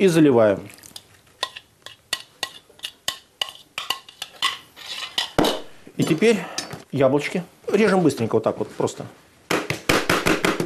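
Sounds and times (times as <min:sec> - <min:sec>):
speech: 0:00.0 - 0:00.8, 0:06.0 - 0:09.2
utensil stirring sliced food with soy sauce, clinking against the bowl: 0:00.9 - 0:05.6.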